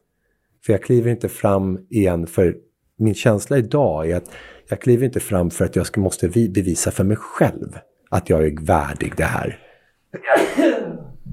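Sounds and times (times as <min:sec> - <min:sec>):
speech: 0:00.6 - 0:10.7
noisy exhale: 0:04.3 - 0:04.7
sneeze caused by pollen: 0:10.2 - 0:11.3.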